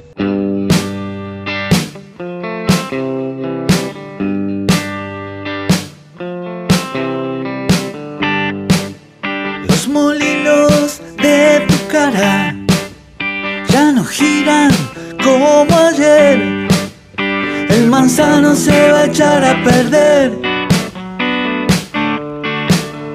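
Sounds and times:
distorted rock guitars: 0.0s - 23.1s
steady punchy rock drum beat: 0.7s - 1.1s, 1.7s - 2.1s, 2.7s - 3.1s, 3.7s - 4.0s, 4.7s - 5.0s, 5.7s - 6.0s, 7.7s - 8.0s, 8.6s - 9.0s, 9.7s - 22.1s, 22.7s - 23.1s
sung vocal line over a rock band: 9.6s - 12.8s, 13.7s - 16.8s, 17.4s - 20.5s.

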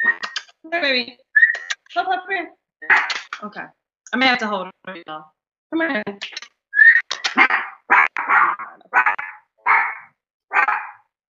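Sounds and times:
speech: 0.7s - 1.2s, 1.9s - 6.4s
pit bull barking: 2.9s - 3.2s, 7.3s - 11.1s.

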